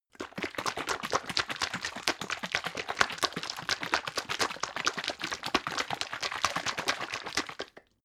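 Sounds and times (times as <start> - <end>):
syrup bottle shaking: 0.1 - 8.0.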